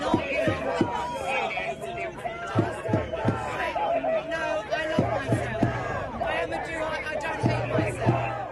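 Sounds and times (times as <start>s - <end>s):
rhythmic claps or drum hits: 0.0s - 1.1s, 2.5s - 3.7s, 4.9s - 6.6s, 7.2s - 8.5s
large crowd of protesters shouting and chanting at a demonstration: 0.0s - 8.5s.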